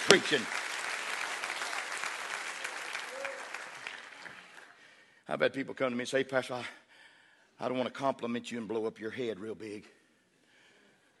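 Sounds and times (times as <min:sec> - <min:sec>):
crowd applauding: 0:00.0 - 0:04.8
speech: 0:00.1 - 0:00.6, 0:05.3 - 0:06.8, 0:07.6 - 0:10.0.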